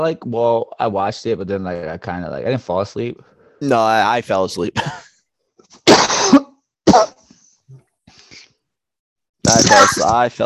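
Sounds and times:
speech: 0.0 - 5.1, 9.7 - 10.4
person coughing harshly: 5.8 - 7.3.

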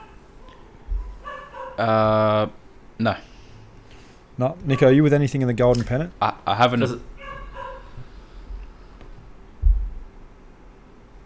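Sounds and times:
dog barking: 0.0 - 1.9, 4.7 - 5.0, 7.2 - 8.0
speech: 1.8 - 3.3, 4.4 - 7.1
dull low thump: 9.6 - 10.1.

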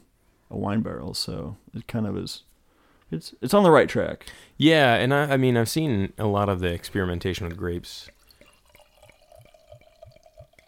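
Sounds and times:
speech: 0.5 - 2.5, 3.1 - 8.2
beer pouring into a glass: 6.9 - 10.6.

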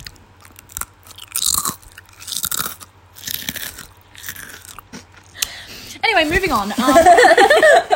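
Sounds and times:
crunchy spicy snack being chewed: 0.0 - 5.4
speech: 6.2 - 7.9
laughter: 6.7 - 7.9.

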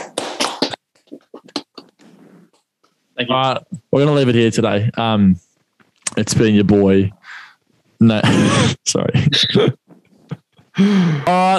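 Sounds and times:
hand clapping from a few people: 0.0 - 2.0
speech: 3.2 - 5.4, 6.2 - 7.4, 8.0 - 9.8, 10.8 - 11.5.

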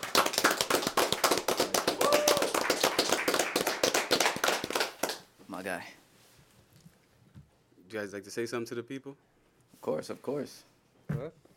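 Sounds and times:
crowd clapping: 0.0 - 5.3
speech: 5.6 - 6.0, 7.9 - 11.5.

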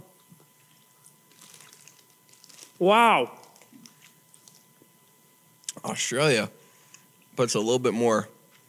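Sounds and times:
chewing tough food: 0.2 - 2.8, 3.4 - 5.8
speech: 2.8 - 3.4, 5.9 - 6.6, 7.4 - 8.4.

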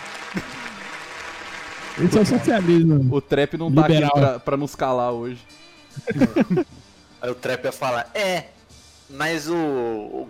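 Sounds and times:
applause: 0.0 - 2.8
speech: 0.3 - 0.6, 2.0 - 10.2
laughter: 0.3 - 0.9, 2.0 - 2.9, 5.9 - 6.8.

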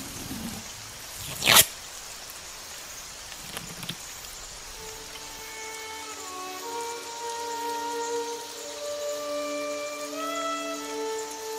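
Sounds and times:
rain falling in the woods: 0.0 - 11.5
soft sustained musical tones: 4.8 - 11.5.

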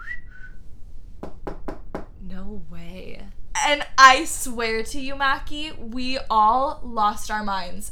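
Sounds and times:
whistled notes played back from voice memo: 0.0 - 0.7
speech: 2.4 - 7.9.

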